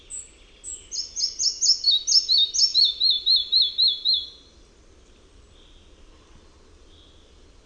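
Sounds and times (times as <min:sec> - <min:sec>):
red-breasted flycatcher singing: 0:00.0 - 0:04.4.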